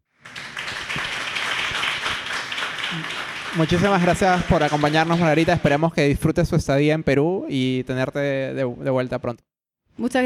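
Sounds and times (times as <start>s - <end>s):
room full of people applauding: 0.2s - 5.9s
speech: 2.9s - 10.2s.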